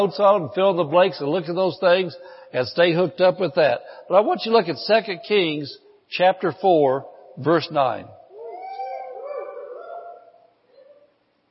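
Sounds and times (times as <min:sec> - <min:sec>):
speech: 0:00.0 - 0:08.2
sick-sounding dog whimpering: 0:08.3 - 0:11.1.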